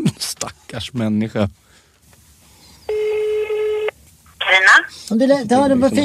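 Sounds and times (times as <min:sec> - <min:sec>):
speech: 0:00.4 - 0:01.8, 0:04.5 - 0:06.0
electronic telephone ringing tone: 0:02.9 - 0:03.9.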